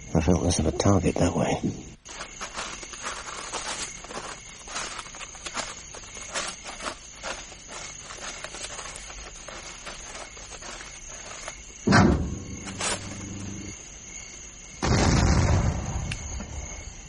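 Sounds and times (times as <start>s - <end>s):
speech: 0.1s - 2.3s
footsteps of a person walking towards a car, scuffing crunch: 1.1s - 14.7s
loud explosion booming with ringing rumbling decay: 14.8s - 16.1s.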